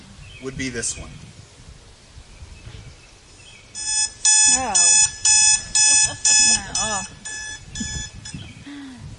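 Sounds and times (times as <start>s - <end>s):
speech: 0.4s - 1.4s, 4.6s - 5.0s
electronic alarm clock beeping: 3.8s - 8.4s.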